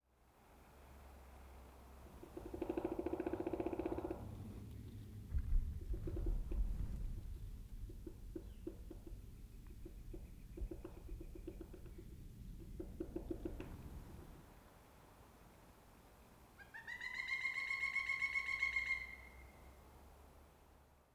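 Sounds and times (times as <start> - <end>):
Pileated Woodpecker: 1.8 - 14.4, 16.4 - 20.3.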